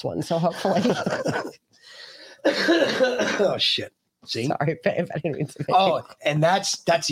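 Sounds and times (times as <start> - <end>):
speech: 0.0 - 7.1
laughter: 0.5 - 1.6
raspy breath: 1.8 - 2.5
hard forceful cough: 2.4 - 3.6.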